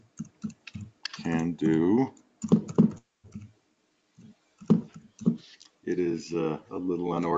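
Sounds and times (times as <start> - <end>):
typing a website address on a computer keyboard: 0.0 - 1.5, 2.4 - 3.5
speech: 1.2 - 2.6, 5.9 - 7.3.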